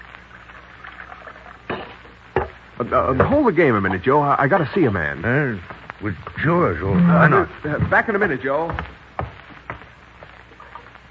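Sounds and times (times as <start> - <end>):
coffee pouring into a cup: 0.3 - 1.8
speech: 2.8 - 9.0.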